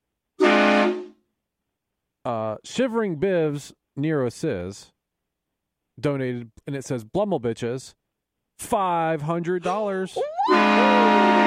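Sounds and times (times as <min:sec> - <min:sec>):
loud brassy train horn blast: 0:00.4 - 0:01.2, 0:10.5 - 0:11.4
speech: 0:02.3 - 0:05.0, 0:06.0 - 0:08.0, 0:08.6 - 0:11.1.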